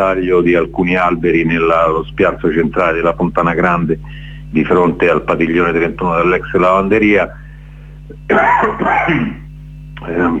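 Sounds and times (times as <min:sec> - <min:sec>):
speech: 0:00.0 - 0:07.4, 0:08.1 - 0:09.4, 0:10.0 - 0:10.3
low steady hum: 0:00.0 - 0:10.3
man with a smoker's cough clearing his throat: 0:08.3 - 0:09.5
man's short raspy smoker's cough from cigarettes: 0:08.3 - 0:09.5.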